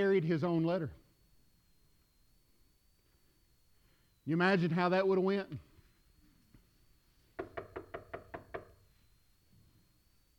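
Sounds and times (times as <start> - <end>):
speech: 0.0 - 1.0, 4.2 - 5.7
knocking on a wooden door: 7.4 - 8.8.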